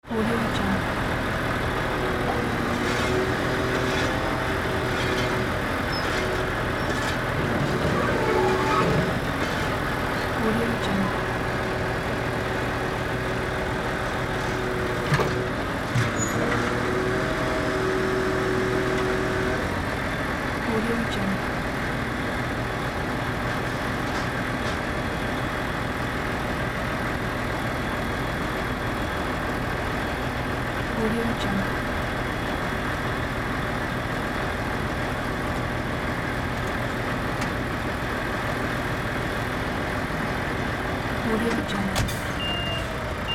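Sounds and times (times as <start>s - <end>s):
construction site truck engine: 0.0s - 43.3s
machine shoveling and digging at construction site: 2.4s - 10.4s.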